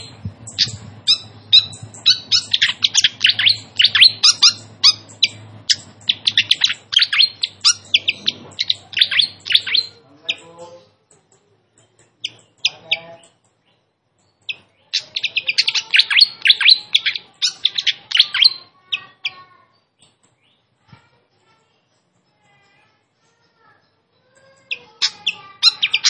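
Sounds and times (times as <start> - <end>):
Malaysian pied fantail song with fast high chirps and whistles: 0.0 - 10.5, 12.2 - 13.1, 14.4 - 19.2, 24.6 - 26.0
faint low hum: 0.0 - 26.0.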